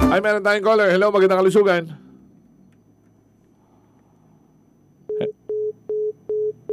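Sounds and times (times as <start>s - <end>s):
speech: 0.1s - 2.0s
telephone line tone after a call drops: 5.1s - 6.7s.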